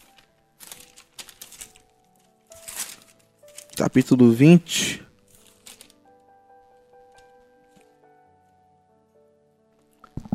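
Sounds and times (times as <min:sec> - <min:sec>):
Bible paper pages flipping and rustling: 0:00.0 - 0:04.4, 0:05.1 - 0:08.0
speech: 0:03.8 - 0:05.0.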